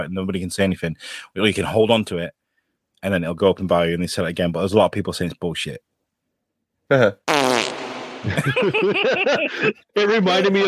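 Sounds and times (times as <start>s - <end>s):
speech: 0.0s - 2.4s, 3.0s - 5.9s, 6.9s - 7.3s, 8.2s - 10.6s
fart noises imitated with the mouth: 7.2s - 8.3s
laughter: 8.2s - 10.0s.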